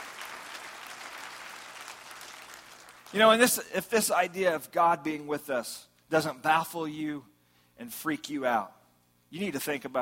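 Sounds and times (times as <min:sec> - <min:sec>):
church congregation clapping hands: 0:00.0 - 0:03.6
speech: 0:03.1 - 0:10.0.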